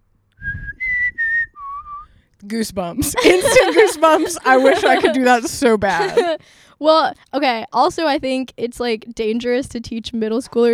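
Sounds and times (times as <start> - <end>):
person whistling a short four-note tune: 0.4 - 2.1
speech: 2.4 - 10.7
laughter: 3.0 - 6.4.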